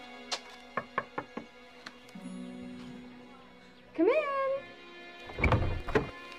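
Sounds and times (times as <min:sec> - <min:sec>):
speech: 0:04.0 - 0:04.4
door being pushed open into a bare room: 0:05.3 - 0:06.2.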